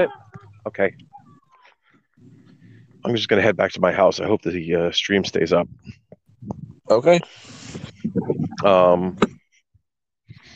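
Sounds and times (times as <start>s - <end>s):
speech: 0.0s - 1.1s, 3.0s - 9.4s
dog whimpering: 0.0s - 1.8s.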